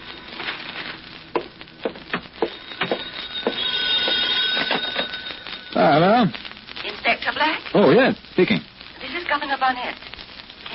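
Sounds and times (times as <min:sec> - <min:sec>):
telephone bell ringing: 0:02.4 - 0:06.3
speech: 0:05.8 - 0:06.4, 0:07.2 - 0:08.7, 0:09.3 - 0:10.1.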